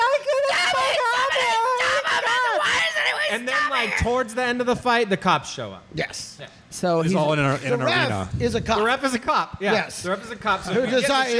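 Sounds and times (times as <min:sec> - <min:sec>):
voice imitating girls screaming and crying: 0:00.0 - 0:04.0
speech: 0:03.3 - 0:11.3.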